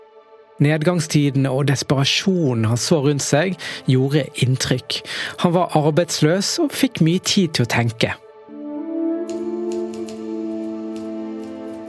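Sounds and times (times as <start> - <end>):
speech: 0.6 - 8.2
sustained musical tones: 8.2 - 11.8
typewriter typing: 9.3 - 11.8.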